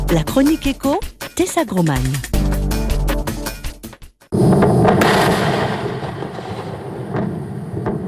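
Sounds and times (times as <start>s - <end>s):
speech: 0.1s - 2.4s
Falcon 9 rocket exploding on the launch pad at Cape Canaveral: 4.4s - 8.0s
sharp cracks of exploding rocket: 4.4s - 8.0s.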